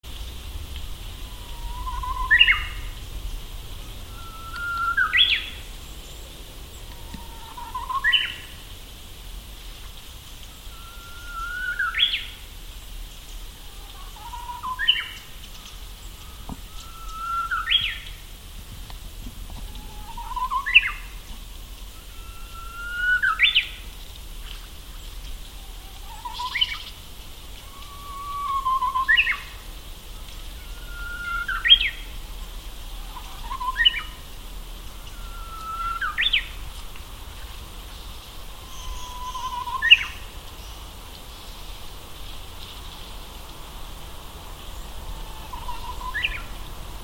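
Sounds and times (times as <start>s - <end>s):
Japanese bush warbler uguisu singing: 1.2s - 8.6s, 10.5s - 12.4s, 13.1s - 18.2s, 19.6s - 21.2s, 21.9s - 24.0s, 25.5s - 27.0s, 27.6s - 29.6s, 30.2s - 32.2s, 32.9s - 36.6s, 37.9s - 41.7s, 44.5s - 46.8s.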